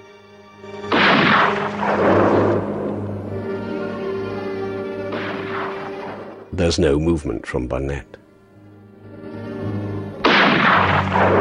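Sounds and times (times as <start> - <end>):
low musical drone: 0.0 - 11.3
rifle fired outdoors in deep snow: 0.8 - 3.0, 5.1 - 6.4, 10.2 - 11.3
speech: 6.6 - 8.2.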